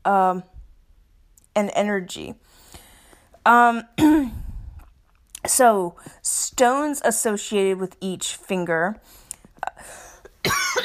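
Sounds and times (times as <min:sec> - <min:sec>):
speech: 0:00.0 - 0:00.6, 0:01.6 - 0:02.7, 0:03.4 - 0:04.4, 0:05.4 - 0:09.2
cough: 0:04.0 - 0:04.4, 0:10.4 - 0:10.8.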